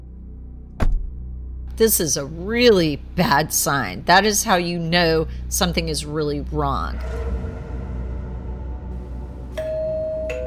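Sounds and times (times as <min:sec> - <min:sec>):
low rumble: 0:00.0 - 0:10.3
speech: 0:01.8 - 0:07.5
doorbell chiming: 0:09.6 - 0:10.4.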